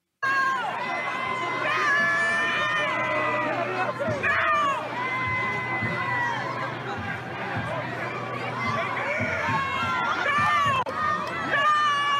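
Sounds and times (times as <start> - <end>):
large crowd of protesters shouting a chant at police: 0.2 - 12.1.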